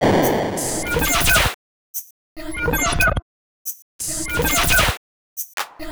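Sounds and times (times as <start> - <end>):
dubstep effects loops: 0.0 - 1.6, 4.0 - 4.9.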